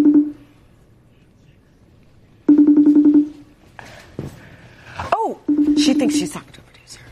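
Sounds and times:
louder warbling telephone ring tone: 0:00.0 - 0:00.5, 0:02.5 - 0:03.5, 0:05.5 - 0:06.4
speech: 0:05.8 - 0:06.6.

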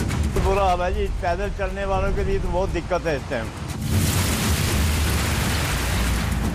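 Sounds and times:
speech: 0:00.4 - 0:04.0
heavy rain pouring: 0:02.0 - 0:06.5
water from the drains running across a street: 0:02.4 - 0:06.5.

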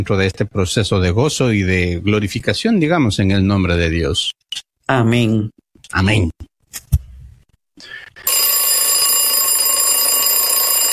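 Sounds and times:
speech: 0:00.0 - 0:06.4
alarm clock metallic ringing: 0:08.3 - 0:10.9.

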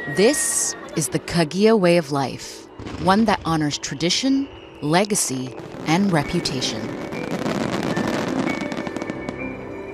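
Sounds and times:
speech: 0:00.1 - 0:07.1
fireworks launching and bursting: 0:05.0 - 0:09.5.

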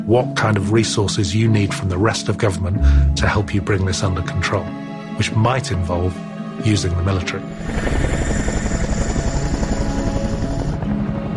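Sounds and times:
speech: 0:00.1 - 0:08.3
helicopter rotor thumping overhead: 0:07.5 - 0:11.1.

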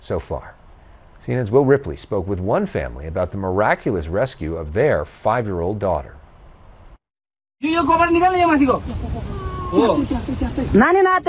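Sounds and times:
speech: 0:00.1 - 0:00.6, 0:01.2 - 0:06.2, 0:07.6 - 0:11.2
five-year-old girl trapped under rubble crying out in wails: 0:09.2 - 0:10.0.

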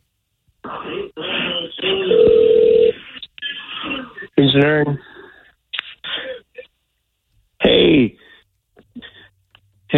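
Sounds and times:
speech: 0:00.7 - 0:02.9, 0:04.4 - 0:05.1
buzzy ringback tone through tinny telephone audio: 0:02.0 - 0:03.0.

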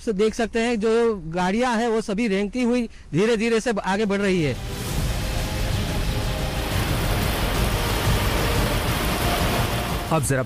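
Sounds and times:
speech: 0:00.0 - 0:04.8, 0:10.1 - 0:10.4
heavy rain in Bharuch hitting surfaces: 0:04.6 - 0:10.4.

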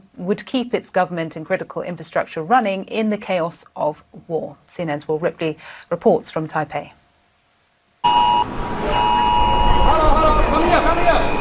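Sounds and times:
speech: 0:00.2 - 0:07.0
rumble of noise: 0:07.1 - 0:11.3
air raid sirens wailing in Taipei during military drills: 0:08.1 - 0:11.3.

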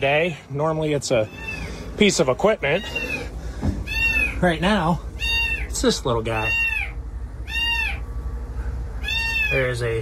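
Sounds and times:
speech: 0:00.0 - 0:03.8, 0:04.4 - 0:05.1, 0:05.8 - 0:06.6, 0:09.5 - 0:10.0
kitten meowing: 0:01.2 - 0:01.8, 0:02.8 - 0:04.5, 0:05.2 - 0:08.0, 0:09.0 - 0:09.8.

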